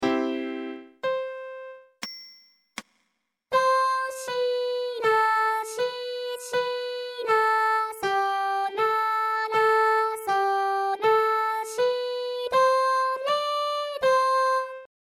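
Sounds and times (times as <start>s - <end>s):
piano on the left channel: 0.0s - 2.0s, 3.5s - 14.9s
vocals on the right channel: 3.5s - 14.9s.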